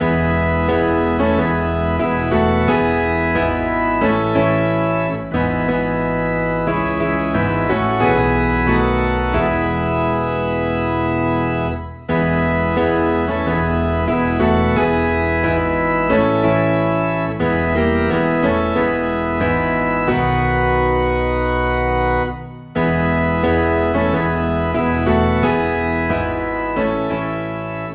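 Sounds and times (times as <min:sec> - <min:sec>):
organ low in E: 0:00.0 - 0:27.9
piano low in E: 0:00.0 - 0:27.9.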